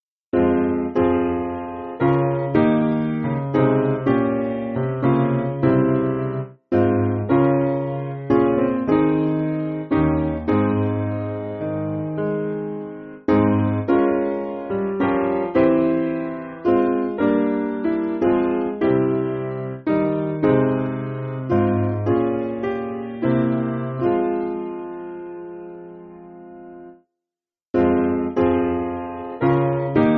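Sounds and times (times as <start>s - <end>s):
piano piece: 0.3s - 27.1s, 27.8s - 30.1s.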